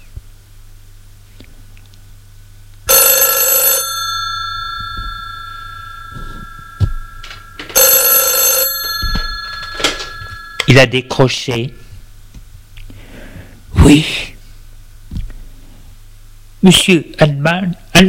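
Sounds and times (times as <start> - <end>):
telephone ringing: 2.9 - 11.2
speech: 10.8 - 11.8, 13.9 - 14.3, 16.6 - 18.0.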